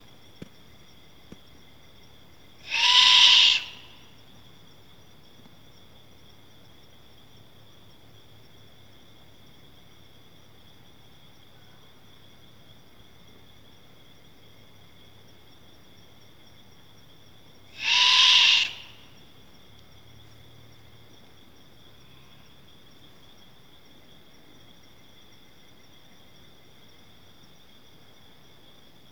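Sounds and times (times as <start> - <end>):
Great Horned Owl Bubo virginianus: 2.6 - 4.0, 17.7 - 19.1.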